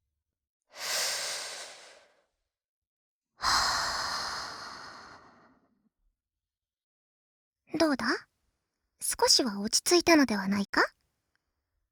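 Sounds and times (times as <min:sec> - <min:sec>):
deep breathing in and out: 0:00.7 - 0:02.3, 0:03.4 - 0:05.6
speech: 0:07.7 - 0:08.3, 0:09.0 - 0:11.0.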